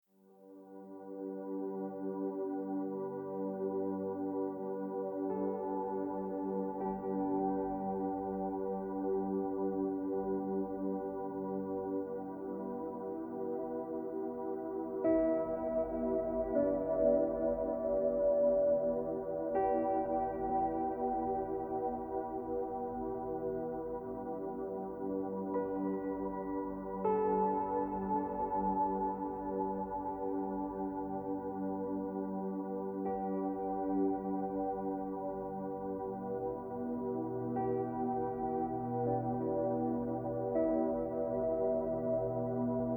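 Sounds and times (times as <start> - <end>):
relaxing music: 0.3 - 42.9.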